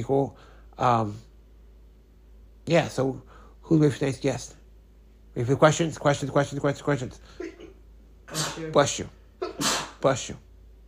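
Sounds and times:
speech: 0:00.0 - 0:01.3, 0:02.7 - 0:04.6, 0:05.4 - 0:07.6, 0:08.3 - 0:10.5
sneezes: 0:07.5 - 0:08.8, 0:09.4 - 0:10.1.

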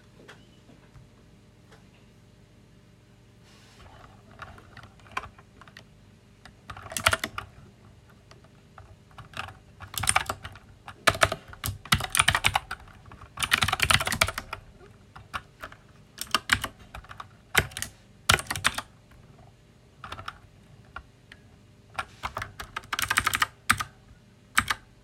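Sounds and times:
faint low hum: 0:00.0 - 0:25.0
loud mechanical keyboard typing: 0:03.9 - 0:07.6, 0:08.2 - 0:18.9, 0:20.0 - 0:24.9.

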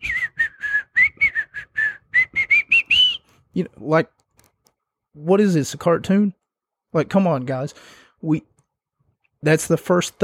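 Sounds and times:
person whistling a jaunty casual tune: 0:00.0 - 0:03.3
speech: 0:03.6 - 0:04.2, 0:05.2 - 0:08.5, 0:09.4 - 0:10.2.

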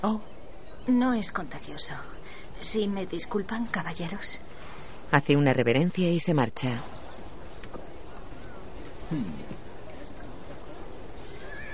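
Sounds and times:
speech: 0:00.0 - 0:07.0, 0:09.1 - 0:09.6
noisy outdoor background: 0:00.0 - 0:11.7
white horse whinnying: 0:11.3 - 0:11.7.

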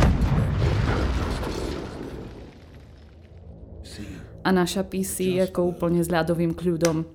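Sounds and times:
loud explosion blowing out windows: 0:00.0 - 0:03.8
faint crackle of debris: 0:00.0 - 0:03.9
speech: 0:04.4 - 0:07.1.

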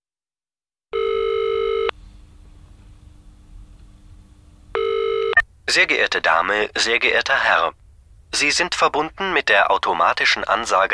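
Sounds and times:
telephone ringback tone on the line: 0:00.9 - 0:01.9, 0:04.8 - 0:05.4
faint low telephone line hum: 0:01.0 - 0:10.0
speech: 0:05.7 - 0:10.9.

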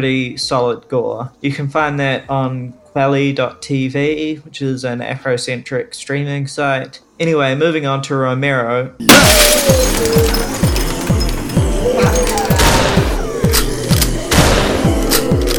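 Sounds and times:
speech: 0:00.0 - 0:10.6
video game gunshots as zombies are shot down: 0:09.1 - 0:15.4.

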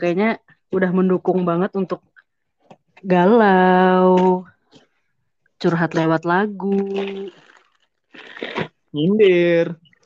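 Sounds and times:
speech: 0:00.0 - 0:02.1, 0:03.0 - 0:04.5, 0:05.6 - 0:07.4, 0:08.2 - 0:10.0
plastic snack packaging crinkling as someone searches for snacks: 0:06.7 - 0:08.7.

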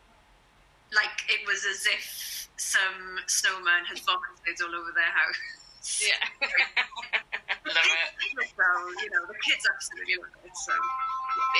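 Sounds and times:
speech: 0:01.4 - 0:11.5
laughter: 0:05.2 - 0:10.0
phone ringing with a melodic sung ringtone: 0:10.6 - 0:11.5.

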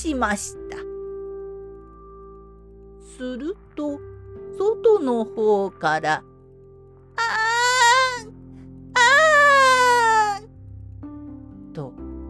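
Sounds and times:
speech: 0:00.0 - 0:00.6, 0:03.2 - 0:06.3, 0:11.8 - 0:12.0
creature crying voiced by a person: 0:07.2 - 0:08.3, 0:09.0 - 0:10.5.

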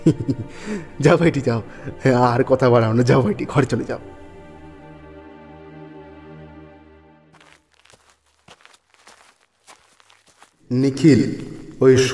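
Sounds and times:
speech: 0:00.0 - 0:04.2, 0:10.7 - 0:12.1
footsteps walking along a road: 0:07.4 - 0:10.7.

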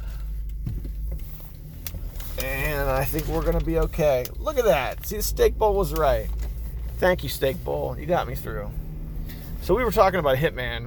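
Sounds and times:
car engine humming inside a car creeping through parking lot traffic: 0:00.0 - 0:10.8
speech: 0:02.9 - 0:06.4, 0:07.0 - 0:08.8, 0:09.6 - 0:10.8.

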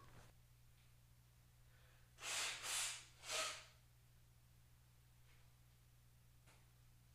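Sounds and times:
person blowing nose irritated by sandalwood and cinnamon incense: 0:02.2 - 0:03.6.

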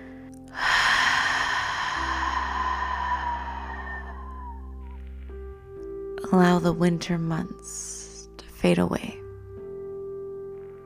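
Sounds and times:
deep exhale during a guided breathing exercise: 0:00.0 - 0:05.3
speech: 0:06.3 - 0:07.9, 0:08.6 - 0:09.2.

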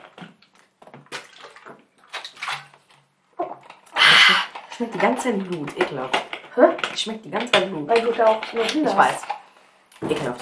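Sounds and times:
person gulping water: 0:00.0 - 0:04.8
speech: 0:04.8 - 0:09.3, 0:10.0 - 0:10.3.

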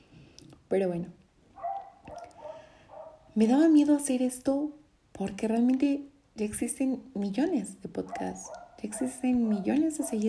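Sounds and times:
speech: 0:00.7 - 0:01.2, 0:03.4 - 0:10.2
small dog barking: 0:01.6 - 0:03.3, 0:08.1 - 0:10.2.

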